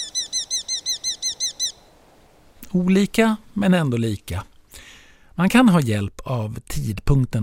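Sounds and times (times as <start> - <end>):
Eurasian hobby call: 0.0 - 2.0
speech: 2.7 - 7.4.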